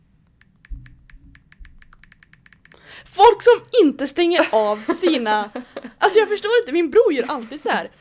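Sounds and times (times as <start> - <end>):
phone keyboard typing clicks: 0.3 - 2.8
speech: 3.0 - 7.9
laughter: 4.4 - 6.2.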